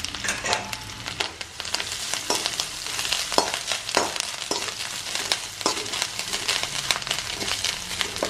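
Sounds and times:
grated coconut and curry leaves sizzling and crackling in a hot pan: 0.0s - 8.2s
scraping strokes stirring grated coconut mixture in a pan: 1.6s - 8.2s.

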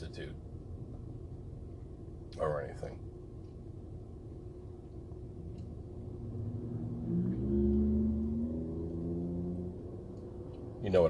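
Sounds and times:
speech: 0.1s - 0.5s, 2.4s - 3.1s
pickup truck engine idling and revving: 5.9s - 10.6s.

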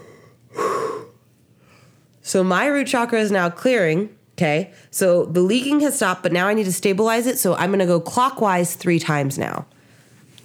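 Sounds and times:
deep yawning breath: 0.0s - 2.0s
speech: 2.3s - 9.8s.

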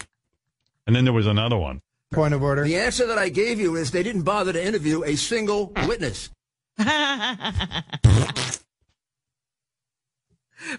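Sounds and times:
speech: 0.9s - 8.4s, 10.6s - 10.7s
laughter: 6.8s - 8.1s
loud low raspy fart: 8.0s - 8.7s.

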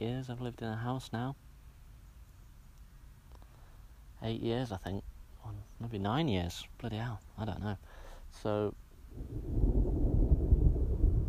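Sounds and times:
speech: 0.0s - 1.5s, 4.2s - 9.8s
deep rolling rumble of thunder: 9.1s - 11.2s.

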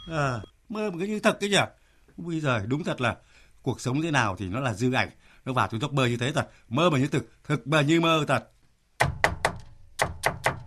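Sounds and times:
speech: 0.0s - 8.6s
firm hollow knocking on a door: 9.0s - 10.6s.

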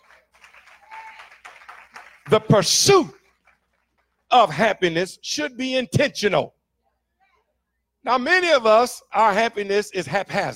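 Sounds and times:
audience clapping hands: 0.0s - 4.3s
speech: 2.3s - 3.2s, 4.3s - 6.6s, 8.0s - 10.5s.

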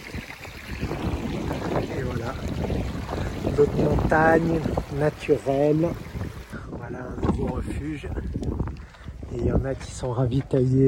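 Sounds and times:
rushing water of a mountain river: 0.0s - 8.6s
speech: 3.6s - 6.1s, 7.8s - 8.2s, 9.6s - 10.8s.

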